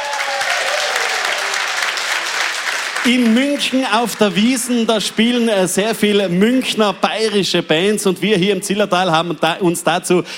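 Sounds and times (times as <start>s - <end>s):
audience applause in a festival tent: 0.0s - 5.8s
speech: 3.0s - 10.3s.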